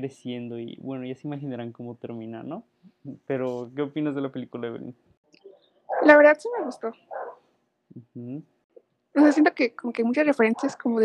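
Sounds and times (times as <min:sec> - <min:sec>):
speech: 0:00.0 - 0:05.1, 0:06.0 - 0:07.2, 0:07.9 - 0:08.5, 0:09.2 - 0:11.0
dog barking: 0:05.9 - 0:07.4, 0:10.5 - 0:10.8.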